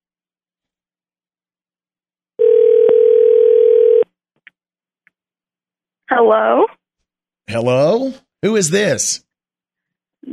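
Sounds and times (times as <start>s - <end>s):
steady telephone dial tone while a number is dialed: 2.4s - 4.1s
speech: 6.1s - 6.8s, 7.5s - 9.2s.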